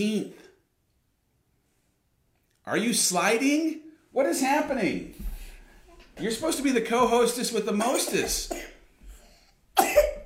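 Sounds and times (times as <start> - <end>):
speech: 0.0 - 0.4, 2.7 - 5.3, 6.2 - 8.7
faint breathy noise: 5.2 - 5.9, 9.0 - 9.7
person coughing: 7.8 - 8.8, 9.8 - 10.2.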